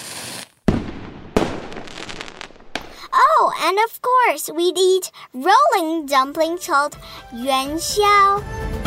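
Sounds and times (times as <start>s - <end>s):
firecracker bangs with crackling sizzling tails: 0.0s - 3.1s
speech: 3.4s - 8.7s.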